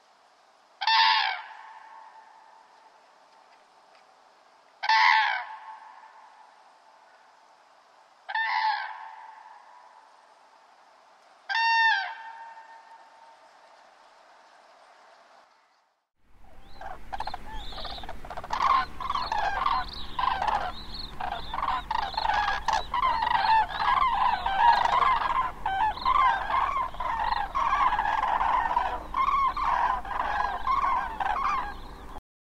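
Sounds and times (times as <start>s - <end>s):
crane calling: 0.8s - 2.9s, 4.8s - 7.3s, 8.3s - 10.2s, 11.5s - 13.5s, 16.3s - 32.2s.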